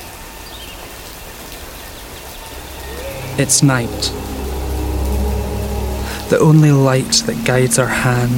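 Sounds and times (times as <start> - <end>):
summer rain falling: 0.0 - 7.5
speech: 3.4 - 4.2, 6.3 - 8.3.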